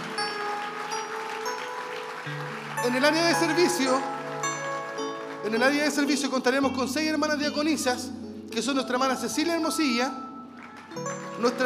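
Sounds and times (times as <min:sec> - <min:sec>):
church audience applauding: 0:00.0 - 0:06.7, 0:10.5 - 0:11.6
speech: 0:02.3 - 0:04.2, 0:05.4 - 0:10.2, 0:10.9 - 0:11.6.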